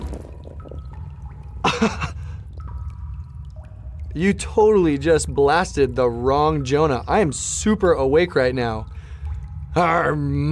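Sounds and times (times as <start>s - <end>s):
bucketful of water splashing on a sleeping man: 0.0s - 4.2s
steady low rumble: 0.0s - 10.5s
speech: 1.8s - 2.2s, 4.2s - 9.0s, 9.8s - 10.5s.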